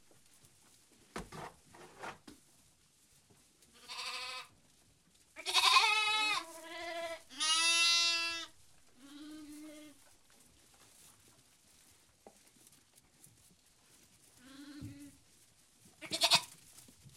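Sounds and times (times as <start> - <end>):
soft background rustling: 0.0 - 17.1
lamb bleating: 3.8 - 4.5, 5.4 - 10.0, 16.0 - 16.6.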